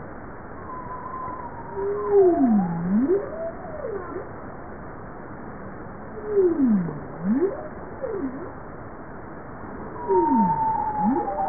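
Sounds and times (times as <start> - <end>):
bowhead whale moan: 0.7 - 4.3, 6.2 - 8.5, 10.0 - 11.4.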